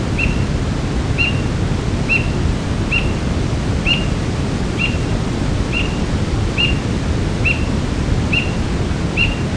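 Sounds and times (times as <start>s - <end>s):
roadside hawk Buteo magnirostris calling: 0.2s - 0.5s, 1.2s - 1.5s, 2.1s - 3.2s, 3.8s - 4.2s, 4.8s - 9.4s.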